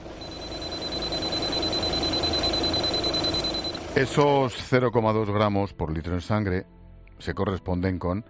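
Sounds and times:
steady high-pitched electronic breathalyzer beep during alcohol breath test: 0:00.1 - 0:04.2
speech: 0:04.0 - 0:08.2.

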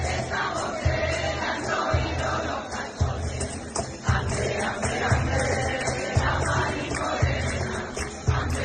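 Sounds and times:
booming flamenco cajón beat: 0:00.0 - 0:08.6
group singing Christmas carols in a parliament: 0:00.0 - 0:08.6
hand-clapping: 0:05.8 - 0:08.6.

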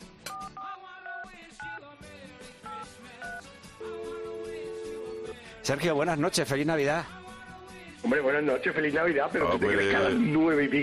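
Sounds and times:
steady held phone tone: 0:02.7 - 0:05.4
speech: 0:05.6 - 0:07.2, 0:08.0 - 0:10.8.

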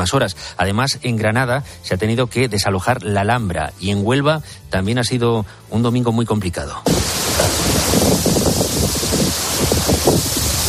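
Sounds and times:
speech: 0:00.0 - 0:07.0
heavy rain pouring: 0:06.9 - 0:10.6
strong wind gusts buffeting the microphone: 0:06.9 - 0:10.6.

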